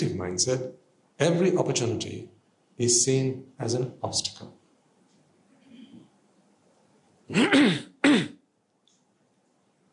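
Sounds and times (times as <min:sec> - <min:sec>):
speech: 0:00.0 - 0:04.6, 0:07.3 - 0:08.3
person clearing throat: 0:07.3 - 0:08.4.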